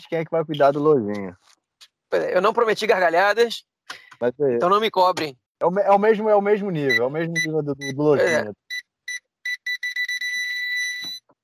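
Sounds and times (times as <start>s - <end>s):
speech: 0.0s - 8.6s
car alarm chirping in short electronic beeps: 6.8s - 11.3s.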